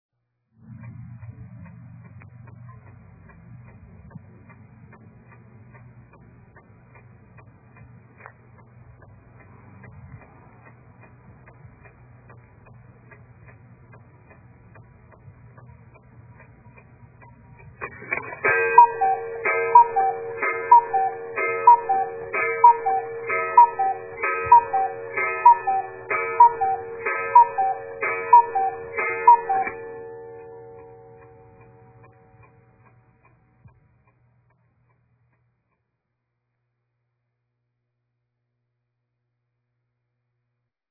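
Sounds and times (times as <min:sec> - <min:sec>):
clock ticking: 0:01.2 - 0:35.9
cuckoo call: 0:18.5 - 0:30.2.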